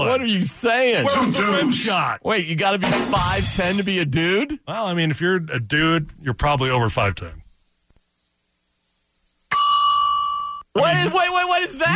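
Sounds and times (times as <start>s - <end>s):
speech: 0.0s - 7.4s, 10.8s - 11.9s
bell ringing: 9.5s - 10.7s.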